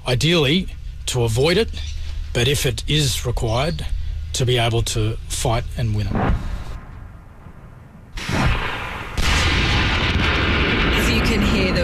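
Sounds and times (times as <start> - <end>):
speech: 0.1 - 6.5
sniper shots during a military war exercise: 6.0 - 11.7
artillery fire during a military war exercise over a wide valley: 6.0 - 11.8.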